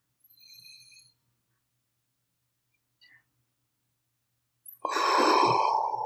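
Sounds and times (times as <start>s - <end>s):
deep breath in and out: 4.8s - 6.0s.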